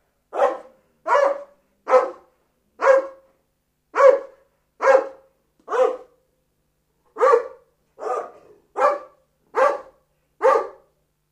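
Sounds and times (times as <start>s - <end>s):
Dobermann barking harshly: 0.3s - 3.3s, 3.9s - 6.2s, 7.2s - 10.9s.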